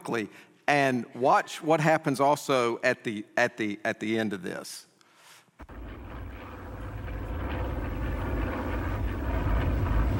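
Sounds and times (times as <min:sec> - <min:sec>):
speech: 0:00.1 - 0:04.9
airplane engine roar while landing: 0:05.6 - 0:10.1.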